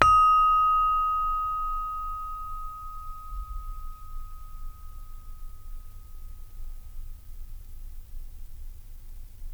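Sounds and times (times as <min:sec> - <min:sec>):
saron note D sharp two: 0:00.0 - 0:07.3.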